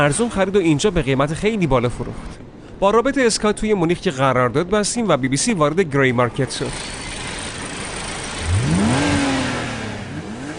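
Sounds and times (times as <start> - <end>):
speech: 0.0 - 7.0
M635 CSI sports car engine revving: 6.7 - 10.5.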